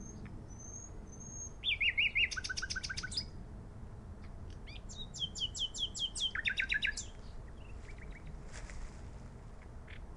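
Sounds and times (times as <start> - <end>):
common nightingale Luscinia megarhynchos singing: 0.0 - 3.4, 4.5 - 8.4, 9.8 - 10.1.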